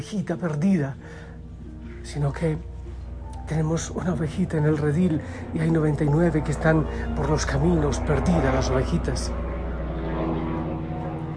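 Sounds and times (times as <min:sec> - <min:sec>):
speech: 0:00.0 - 0:01.3, 0:02.0 - 0:02.7, 0:03.5 - 0:09.4
helicopter engine and rotor drone overhead: 0:03.1 - 0:11.3.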